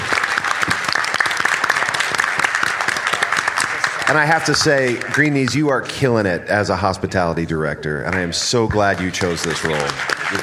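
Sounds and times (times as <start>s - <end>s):
dense applause from a sizable audience: 0.0s - 6.2s, 8.1s - 10.4s
speech: 4.1s - 10.4s.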